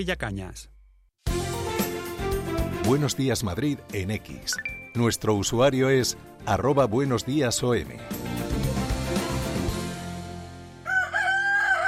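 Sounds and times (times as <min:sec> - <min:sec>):
speech: 0:00.0 - 0:00.8, 0:02.9 - 0:08.5
music: 0:01.2 - 0:10.9
rooster crowing: 0:10.8 - 0:11.8.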